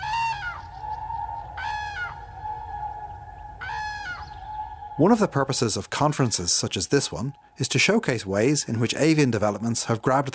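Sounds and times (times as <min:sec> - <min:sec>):
common crane trumpeting calls: 0:00.0 - 0:07.6
speech: 0:05.0 - 0:10.3.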